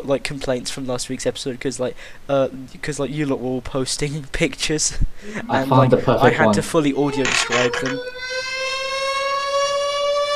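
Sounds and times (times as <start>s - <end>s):
speech: 0.0s - 8.4s
air raid siren wailing: 7.1s - 10.3s.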